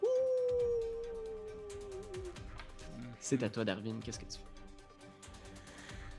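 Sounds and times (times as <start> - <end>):
wolf howling: 0.0 - 2.4
speech: 3.2 - 4.6.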